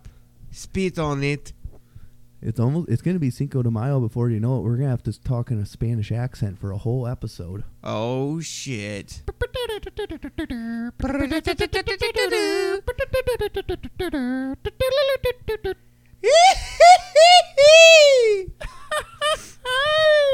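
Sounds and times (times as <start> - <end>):
speech: 0.6 - 1.6, 2.4 - 20.3
voice imitating a Mexican grito with high-pitched yelps: 9.3 - 13.2, 16.2 - 18.5
laughter: 11.1 - 14.2, 14.9 - 20.3.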